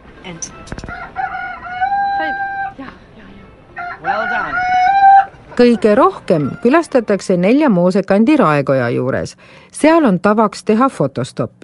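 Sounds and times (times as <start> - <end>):
speech: 0.2 - 1.3, 2.2 - 3.1, 4.0 - 4.7, 5.6 - 11.6
recorded rooster crowing from town musicians statue: 0.9 - 2.8, 3.8 - 7.3
recorded animal cries and yelps from town musicians statue: 1.0 - 2.8, 3.9 - 6.8.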